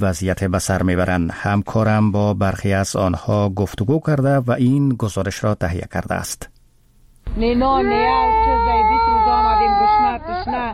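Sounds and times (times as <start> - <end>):
speech: 0.0 - 6.5, 7.3 - 10.7
three-year-old child in Kabul crying from hunger: 7.6 - 10.7.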